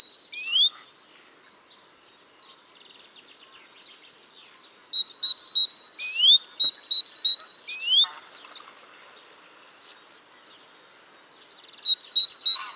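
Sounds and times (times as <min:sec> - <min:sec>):
great tit Parus major calling: 0:05.0 - 0:08.1, 0:11.9 - 0:12.7.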